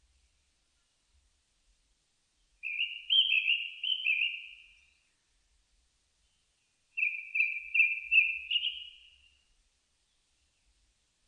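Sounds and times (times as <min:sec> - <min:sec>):
Japanese thrush singing warbled whistles: 0:02.6 - 0:04.9, 0:07.0 - 0:09.4.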